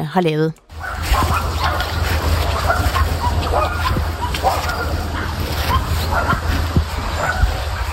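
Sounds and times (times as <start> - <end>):
speech: 0.0 - 0.6
low constant hum: 0.0 - 7.9
several dogs barking: 0.7 - 7.9.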